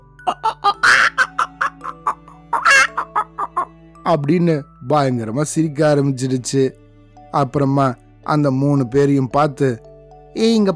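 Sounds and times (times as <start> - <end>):
voice imitating a hen's cackling laugh: 0.3 - 3.6
speech: 4.1 - 10.7.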